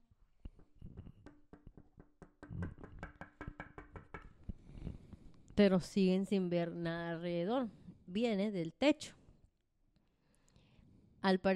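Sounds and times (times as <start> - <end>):
rapid sharp knocks imitating knuckles tapping on glass: 0.5 - 4.5
speech: 5.6 - 9.2, 11.2 - 11.5.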